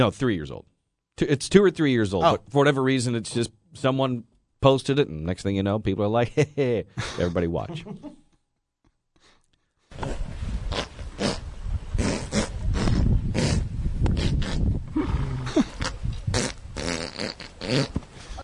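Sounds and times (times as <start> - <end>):
speech: 0.0 - 8.2
fart noises from a video: 9.9 - 18.2
raspy growl-like bursts: 12.0 - 18.0.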